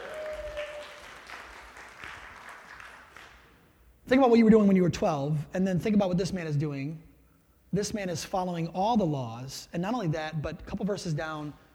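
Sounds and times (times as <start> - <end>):
audience clapping: 0.0 - 3.6
speech: 4.1 - 7.1, 7.7 - 11.6.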